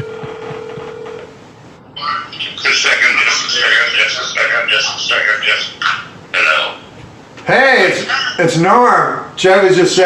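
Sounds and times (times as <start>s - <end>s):
electronic telephone tone like keypad dialing: 0.0s - 1.3s
low hum: 0.0s - 10.0s
speech: 7.5s - 10.0s.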